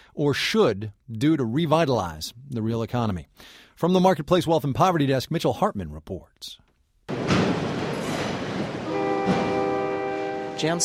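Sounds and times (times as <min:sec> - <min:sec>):
speech: 0:00.2 - 0:06.6, 0:10.6 - 0:10.8
freight train rolling past on railroad tracks supplying a Chrysler plant: 0:07.1 - 0:10.8
sustained tonal whine or horn-like blare: 0:08.8 - 0:10.8.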